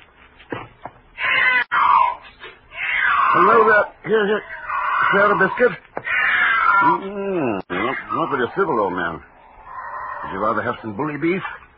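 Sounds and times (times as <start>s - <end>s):
thin black tawny cat yowling: 1.2s - 8.5s, 9.3s - 10.6s
speech: 3.4s - 5.9s, 6.8s - 9.3s, 10.2s - 11.6s.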